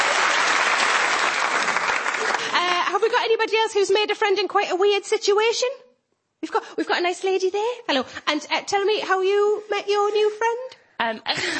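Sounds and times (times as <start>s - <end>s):
audience applause: 0.0s - 2.6s
speech: 3.1s - 5.8s, 6.4s - 11.5s.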